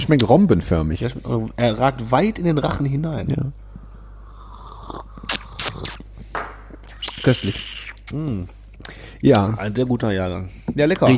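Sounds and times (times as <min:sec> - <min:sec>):
speech: 0:00.0 - 0:03.6, 0:07.2 - 0:11.1
short wet slurps of coffee: 0:04.3 - 0:08.1.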